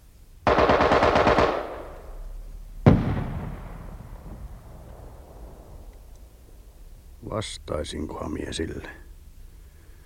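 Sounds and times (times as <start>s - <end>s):
automatic gunfire burst: 0.5s - 2.2s, 2.8s - 4.2s
single sharp gunshot echoing: 0.5s - 5.9s
speech: 7.3s - 9.0s.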